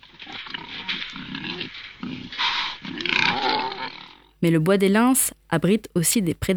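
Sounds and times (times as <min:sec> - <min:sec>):
rustling and scraping of soil disturbed by rooting wild boar: 0:00.0 - 0:04.2
wild boar grunting and snuffling while rooting forest soil of the Bois des Lens: 0:00.0 - 0:04.4
speech: 0:04.4 - 0:06.5.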